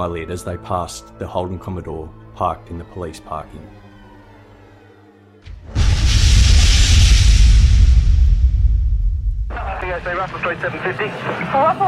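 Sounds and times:
speech: 0.0s - 3.8s, 10.0s - 11.8s
loud explosion shattering windows: 5.5s - 10.1s.

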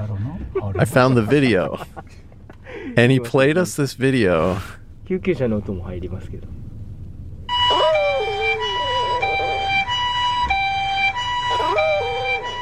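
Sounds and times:
laughter: 0.0s - 3.0s
speech: 0.6s - 2.1s, 2.9s - 6.6s
chihuahua howling: 7.5s - 10.0s, 11.5s - 12.6s
loud steady ambulance siren: 7.5s - 12.6s.

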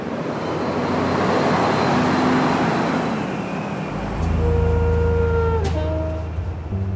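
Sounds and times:
cars and trucks passing over a bridge: 0.0s - 6.9s
deep engine rumble: 3.9s - 6.9s.

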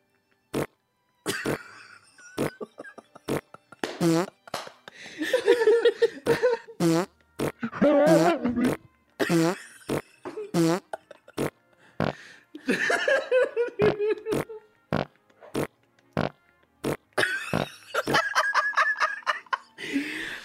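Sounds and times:
rapid series of loud sputtering and buzzy farts: 0.5s - 0.7s, 3.3s - 4.4s, 6.8s - 12.2s, 14.3s - 17.6s
laughter: 1.3s - 6.8s, 7.6s - 11.5s, 12.6s - 14.7s, 17.2s - 20.4s.

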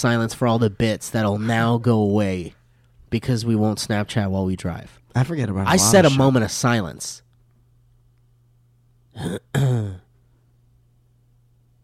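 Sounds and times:
speech: 0.0s - 7.2s, 9.2s - 10.0s
faint steady hum: 0.0s - 11.8s
person clearing throat: 9.1s - 10.1s.

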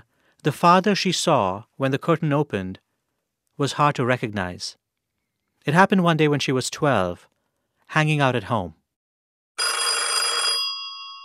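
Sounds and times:
speech: 0.4s - 2.8s, 3.6s - 4.8s, 5.6s - 7.3s, 7.9s - 8.8s
home telephone ringing: 9.6s - 11.2s.

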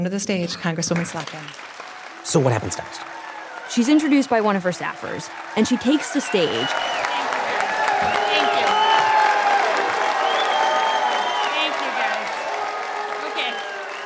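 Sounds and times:
speech: 0.0s - 7.0s
large crowd cheering: 0.6s - 14.0s
crowd applause: 0.8s - 14.0s.

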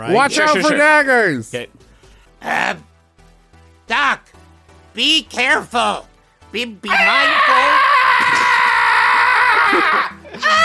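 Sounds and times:
speech: 0.0s - 1.8s, 2.4s - 2.9s, 3.9s - 4.4s, 5.0s - 7.8s, 9.7s - 10.6s
man screaming in panic: 6.9s - 10.6s.

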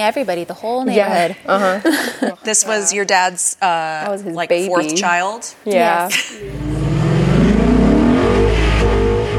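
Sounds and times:
speech: 0.0s - 6.8s
car engine revving with throaty exhaust: 6.4s - 9.3s.

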